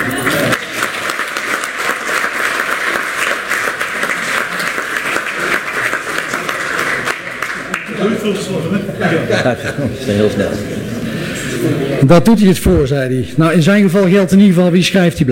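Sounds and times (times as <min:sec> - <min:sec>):
laughter: 0:00.0 - 0:00.7, 0:04.1 - 0:12.0
sizeable crowd applauding for a departing council member: 0:00.0 - 0:08.6
speech: 0:08.2 - 0:10.7, 0:11.6 - 0:15.3.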